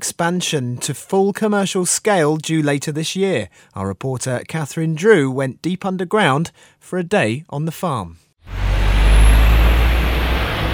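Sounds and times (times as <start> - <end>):
speech: 0.1 - 8.6
traffic roaring along a busy high street in Clapham, South London: 8.5 - 10.7.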